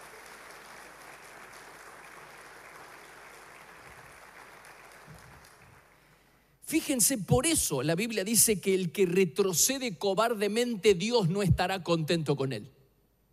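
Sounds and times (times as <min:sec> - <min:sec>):
audience applauding: 0:00.0 - 0:06.2
speech: 0:06.7 - 0:12.8.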